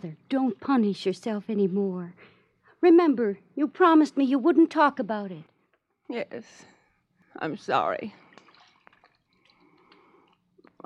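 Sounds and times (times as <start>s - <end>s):
speech: 0.0s - 5.5s, 6.1s - 6.7s, 7.4s - 8.2s
soft continuous water trickle: 8.2s - 10.6s
water splashing as someone bathes their eyes: 8.3s - 9.9s.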